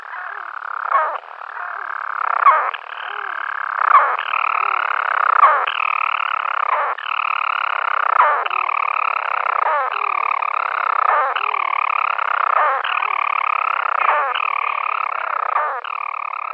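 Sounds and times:
European storm petrel purring call: 0:00.0 - 0:16.5.

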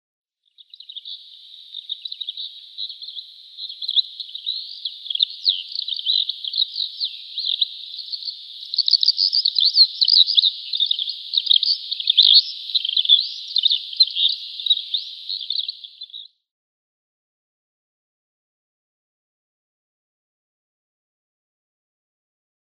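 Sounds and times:
Razo lark song: 0:00.4 - 0:16.4.

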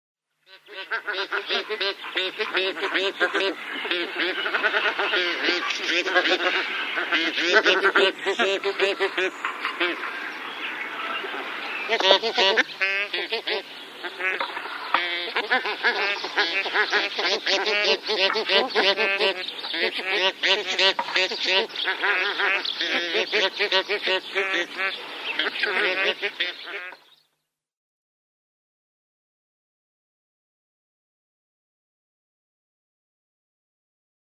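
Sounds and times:
bar-headed goose calling: 0:00.5 - 0:27.1.

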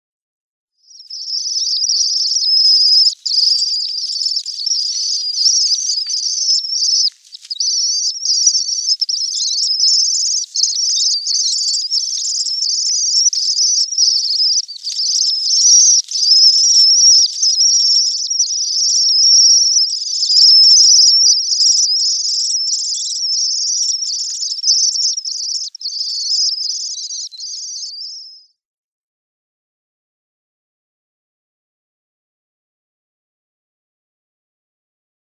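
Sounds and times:
Common Swift nestlings: 0:00.9 - 0:28.4.

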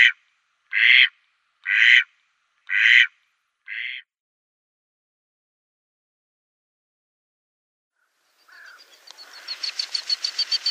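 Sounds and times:
male mallard quacking: 0:00.0 - 0:02.1, 0:02.7 - 0:04.1.

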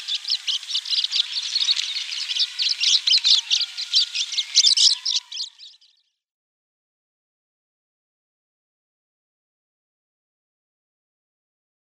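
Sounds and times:
Eurasian crag martin song twittering: 0:00.0 - 0:06.1.

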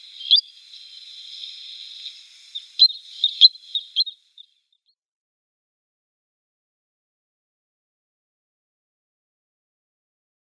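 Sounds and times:
spotted sandpiper calling: 0:00.0 - 0:04.5.

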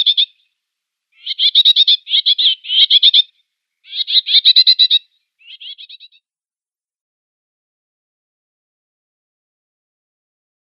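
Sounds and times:
common whitethroat uttering dry ticking chatter notes: 0:00.0 - 0:00.3, 0:01.2 - 0:03.3, 0:03.9 - 0:06.2.

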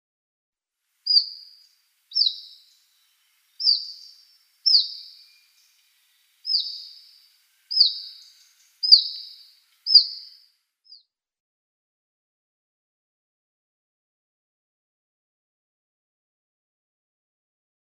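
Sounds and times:
Iberian Chiffchaff calling: 0:01.1 - 0:10.4.

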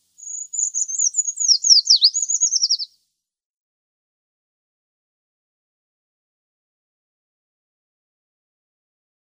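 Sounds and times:
Eurasian treecreeper singing thin high phrase: 0:00.2 - 0:02.9.

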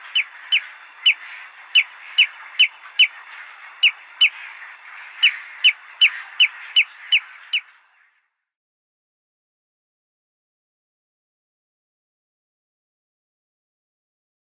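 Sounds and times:
Common greenshank chick peeping: 0:00.0 - 0:07.7
faint steady hiss: 0:00.0 - 0:08.2.

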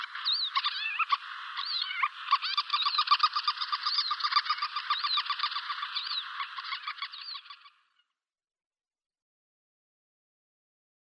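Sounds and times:
White-tailed lapwing alarm calls: 0:00.0 - 0:08.0.

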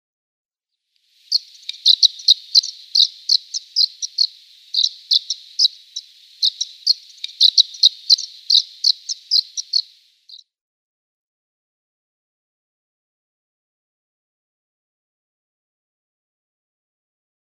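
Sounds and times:
White-rumped Sandpiper calls: 0:01.2 - 0:10.4.

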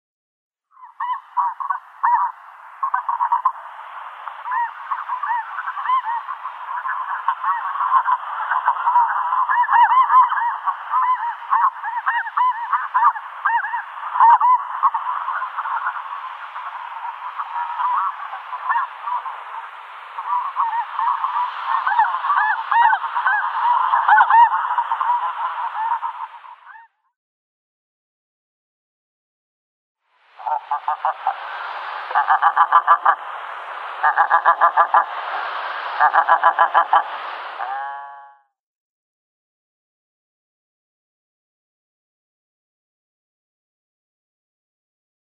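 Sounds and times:
snow goose calling: 0:00.8 - 0:26.9, 0:30.4 - 0:33.3, 0:34.0 - 0:38.4.

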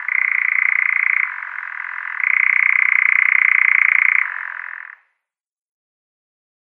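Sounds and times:
male European nightjar churring in display: 0:00.0 - 0:05.0.

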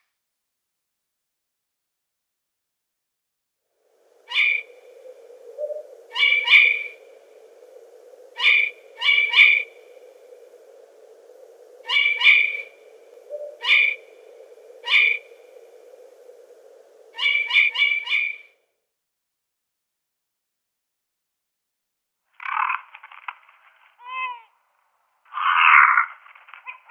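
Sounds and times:
Long-eared Owl calling: 0:04.2 - 0:18.5, 0:25.3 - 0:26.1.

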